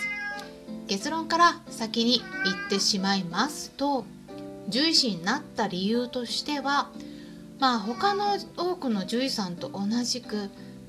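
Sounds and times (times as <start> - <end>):
cat meowing: 0.0 - 0.5, 2.2 - 3.0, 7.7 - 8.5
speech: 0.9 - 7.0, 7.6 - 10.6
woman speaking calmly: 0.9 - 7.0, 7.6 - 10.6.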